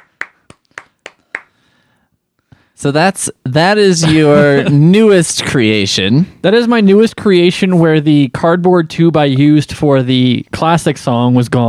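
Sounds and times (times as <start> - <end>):
polite applause of slow sharp claps: 0.0 - 1.6
speech: 2.8 - 11.6
laughter: 3.9 - 5.6.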